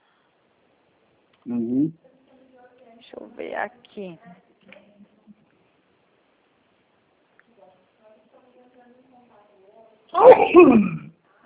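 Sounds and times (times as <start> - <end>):
speech: 1.4 - 2.1, 3.0 - 4.8, 10.1 - 11.0
sneeze: 10.2 - 11.2.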